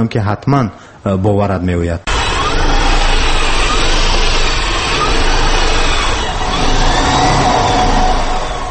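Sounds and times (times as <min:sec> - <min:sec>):
speech: 0:00.0 - 0:02.1
electric car running with broadband hum and faint whining tones: 0:02.1 - 0:08.6.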